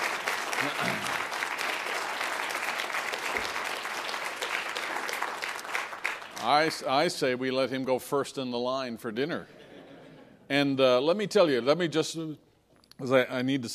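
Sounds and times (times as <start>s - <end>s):
congregation applauding: 0.0s - 7.1s
speech: 0.6s - 1.2s, 6.4s - 9.6s, 10.5s - 12.4s, 13.0s - 13.7s.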